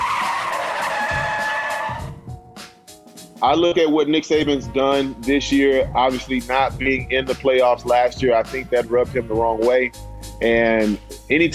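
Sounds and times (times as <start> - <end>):
car tires skidding as brakes lock: 0.0 - 2.0
speech: 3.4 - 11.5.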